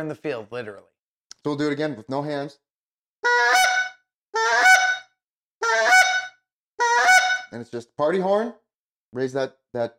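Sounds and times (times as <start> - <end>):
speech: 0.0 - 2.6, 7.5 - 9.9
handheld goose call honks: 3.2 - 7.6.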